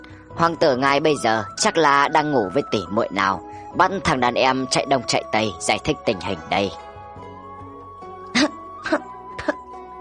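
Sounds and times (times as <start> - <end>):
speech: 0.4 - 6.8, 8.9 - 9.1
elderly woman dry coughing: 8.3 - 9.6.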